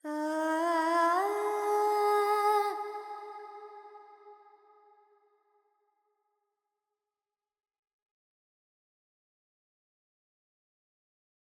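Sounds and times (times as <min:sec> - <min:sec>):
Carnatic female alap vocals in Phrygian mode: 0:00.0 - 0:04.0.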